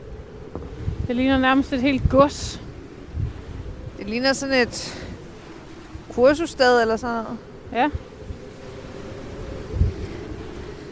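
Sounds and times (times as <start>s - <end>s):
strong outdoor wind buffeting the microphone: 0.0s - 10.9s
speech: 1.1s - 2.6s, 4.0s - 5.0s, 6.2s - 8.1s.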